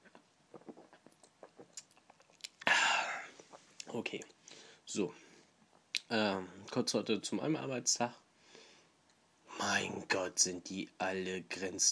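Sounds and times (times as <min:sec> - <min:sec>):
mouth clicks and smacks from sipping a drink: 0:00.0 - 0:04.0, 0:05.7 - 0:06.1
speech: 0:03.9 - 0:05.3, 0:06.1 - 0:08.2, 0:09.8 - 0:11.9.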